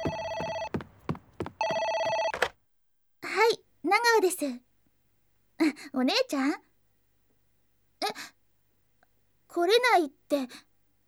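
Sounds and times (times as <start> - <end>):
telephone ringing in long electronic bursts: 0.0 - 2.5
speech: 3.9 - 4.7, 5.6 - 6.7, 8.1 - 8.4, 9.5 - 10.7.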